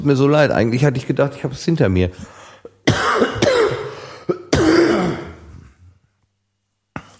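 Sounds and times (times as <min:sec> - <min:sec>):
speech: 0:00.0 - 0:03.0
person coughing: 0:02.8 - 0:05.7
person clearing throat: 0:02.9 - 0:05.8.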